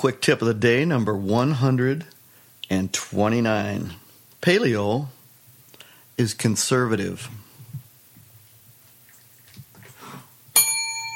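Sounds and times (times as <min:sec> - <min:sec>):
speech: 0:00.0 - 0:05.2, 0:06.2 - 0:07.4
bell being rung: 0:10.6 - 0:11.1.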